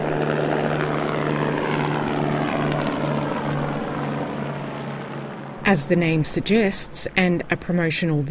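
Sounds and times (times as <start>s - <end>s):
electric vertical takeoff and landing aircraft rotors whirring: 0.0s - 8.2s
speech: 5.7s - 8.2s.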